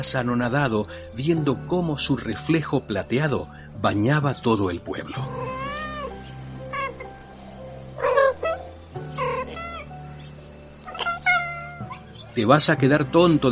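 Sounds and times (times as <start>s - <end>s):
speech: 0.0s - 5.4s, 12.4s - 13.5s
cat meowing: 5.1s - 7.2s, 8.0s - 10.0s, 10.8s - 12.0s.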